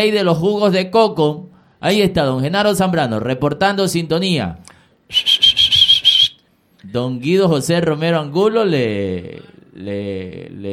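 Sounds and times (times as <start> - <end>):
speech: 0.0 - 5.4, 6.8 - 10.7
person whistling a quick rhythmic signature call: 5.1 - 6.4.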